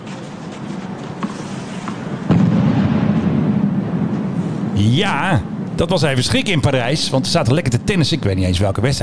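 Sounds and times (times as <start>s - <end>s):
steady outdoor hum: 0.0s - 9.0s
sudden deep boom with low rumble: 2.3s - 4.1s
speech: 4.8s - 9.0s.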